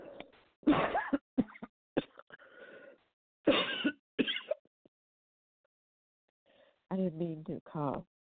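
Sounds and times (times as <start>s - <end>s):
man clearing throat and coughing while reading aloud: 0.7s - 2.3s, 3.5s - 4.6s
speech: 7.1s - 8.1s.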